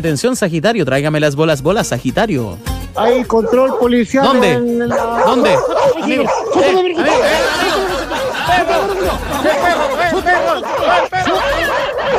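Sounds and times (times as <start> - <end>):
speech: 0.0 - 7.9
dog barking: 3.1 - 7.9, 10.3 - 12.1
loud overlapping voices: 3.1 - 12.1
people laughing: 3.2 - 12.1.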